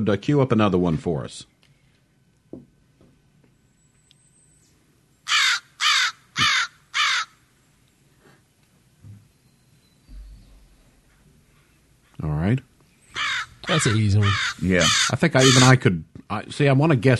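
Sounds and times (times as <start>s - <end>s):
speech: 0.0s - 1.5s, 12.2s - 12.7s, 13.6s - 17.1s
American crow cawing: 5.3s - 7.4s, 13.1s - 15.8s
faint low thumps: 10.0s - 12.8s.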